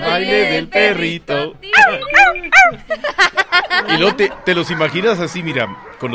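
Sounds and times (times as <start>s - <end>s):
speech: 0.2s - 6.1s
dog whining: 1.7s - 2.8s
dog yipping and barking: 1.7s - 2.8s, 5.7s - 6.1s
laughter: 2.1s - 5.7s.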